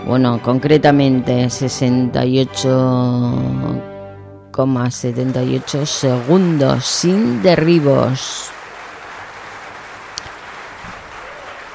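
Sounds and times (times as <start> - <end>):
speech: 0.1 - 3.9, 4.6 - 8.6
applause at a show-jumping competition: 5.1 - 11.7.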